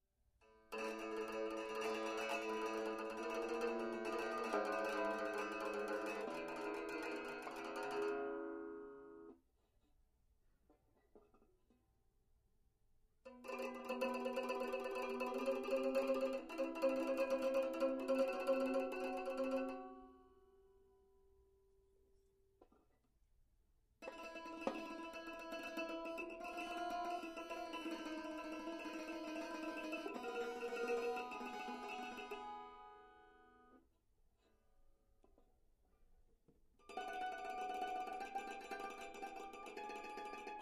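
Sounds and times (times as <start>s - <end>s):
banjo playing: 0.5s - 9.3s, 13.3s - 20.2s, 24.0s - 33.8s, 36.9s - 40.6s.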